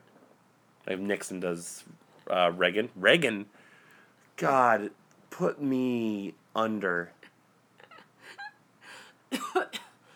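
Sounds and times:
speech: 0.9 - 3.6, 4.4 - 7.2
person coughing: 9.3 - 10.0.

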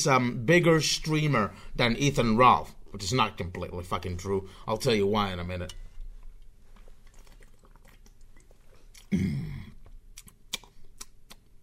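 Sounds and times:
speech: 0.0 - 5.8, 9.1 - 9.5
person sipping water with wet clicks, slurps and a swallow: 5.8 - 11.3.

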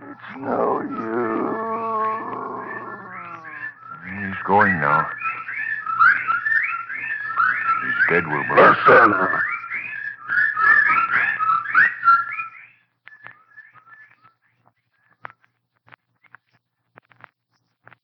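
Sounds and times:
dense chorus of shrill warbling bird calls: 0.0 - 12.7
speech: 0.3 - 1.3, 4.4 - 5.2, 8.1 - 9.5.

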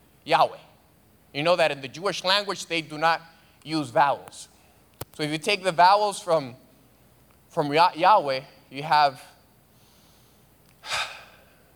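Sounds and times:
speech: 0.2 - 0.7, 1.3 - 4.5, 5.2 - 6.6, 7.5 - 9.3
deliberate breathy rush of air: 9.8 - 11.6.

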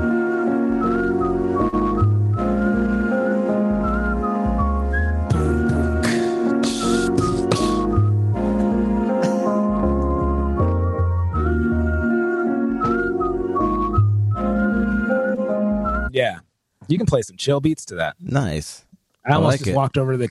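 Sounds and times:
whistled melody from a recorded song: 0.0 - 16.1
band backing with bass, drums and chords: 0.0 - 16.2
speech: 16.9 - 20.2.

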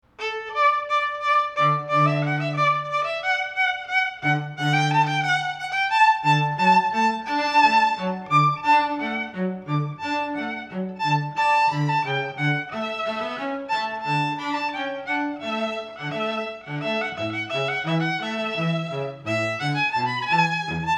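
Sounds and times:
string duo playing: 0.0 - 20.9.

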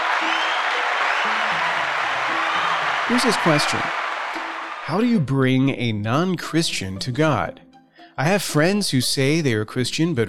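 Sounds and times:
audience applauding: 0.0 - 5.1
speech: 3.1 - 4.0, 4.9 - 7.6, 8.2 - 10.2.

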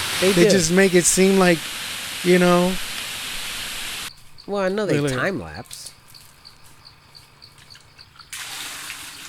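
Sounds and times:
speech: 0.2 - 2.9, 4.5 - 6.0
water pouring into a small container from a little spittoon: 8.3 - 9.2.

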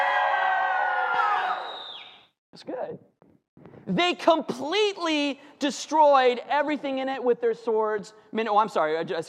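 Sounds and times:
crowd cheering and shouting: 0.0 - 1.9
speech: 2.6 - 3.2, 3.9 - 9.2.

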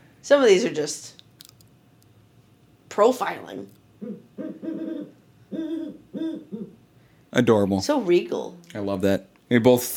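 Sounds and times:
speech: 0.2 - 1.2, 3.0 - 4.5, 7.4 - 9.9
Great Horned Owl deep hooting: 4.0 - 6.9.

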